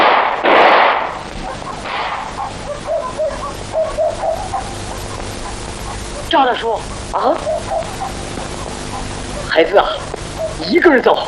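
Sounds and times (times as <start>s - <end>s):
gunshots fired in a tense scene: 0.0s - 2.6s
quiet rumbling: 0.0s - 11.2s
speech: 6.3s - 7.5s, 9.6s - 10.0s, 10.6s - 11.2s.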